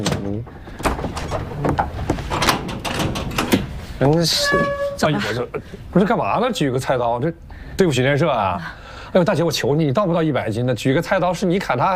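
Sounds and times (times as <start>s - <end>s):
door being opened with knocks, rattles and scraping clunks: 0.0s - 5.2s
speech: 4.0s - 11.9s.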